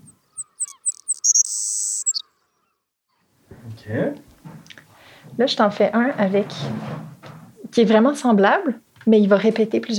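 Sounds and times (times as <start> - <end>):
recorded bird call with quick high chirps and bright trill: 0.0 - 2.8
speech: 3.9 - 4.3, 5.4 - 7.1, 7.7 - 9.9.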